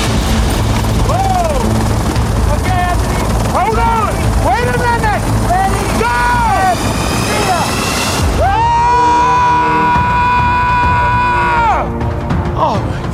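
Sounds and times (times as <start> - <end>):
helicopter carrying skydivers over mountain peaks engine and rotor roar: 0.0 - 13.1
voices: 2.5 - 7.8.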